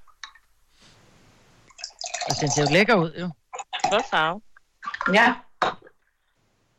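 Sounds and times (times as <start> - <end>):
drink pouring into a glass: 1.7 - 2.8
speech: 2.3 - 5.8.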